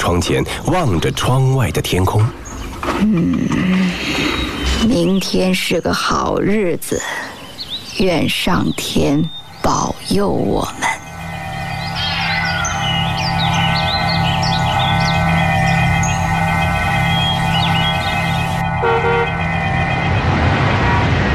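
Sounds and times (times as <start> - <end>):
speech: 0.1 - 7.3, 8.0 - 11.0
low rumble: 9.4 - 21.3
electronic alarm tone with layered harmonics and chirpy warbles: 10.8 - 21.3.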